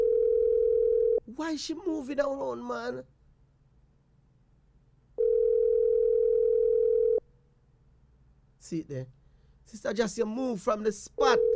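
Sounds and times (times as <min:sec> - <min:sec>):
steady telephone ringing tone: 0:00.0 - 0:01.2, 0:05.2 - 0:07.2, 0:11.4 - 0:11.5
faint low hum: 0:00.0 - 0:11.5
speech: 0:01.4 - 0:03.2, 0:08.6 - 0:11.5.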